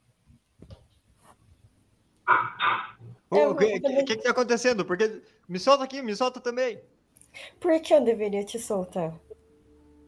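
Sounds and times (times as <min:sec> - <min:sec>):
loud dog barks: 0:02.3 - 0:03.0
speech: 0:03.3 - 0:09.3.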